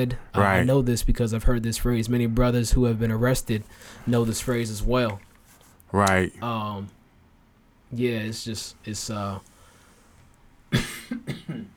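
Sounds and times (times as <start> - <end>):
speech: 0.0 - 5.3, 5.9 - 7.0, 7.9 - 9.5
man coughing and clearing throat: 10.7 - 11.7.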